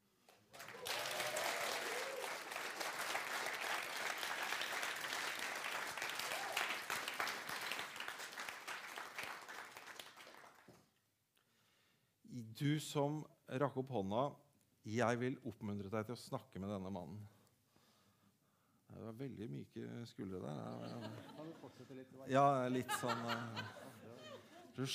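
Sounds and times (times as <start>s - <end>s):
crowd clapping: 0.2s - 10.9s
speech: 12.6s - 17.4s, 19.0s - 24.9s
laughter: 20.5s - 24.9s.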